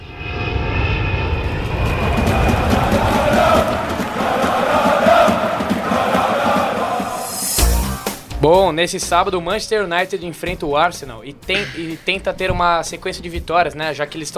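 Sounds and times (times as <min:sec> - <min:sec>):
fixed-wing airplane engine roar flying past: 0:00.0 - 0:08.2
speech: 0:08.5 - 0:14.3.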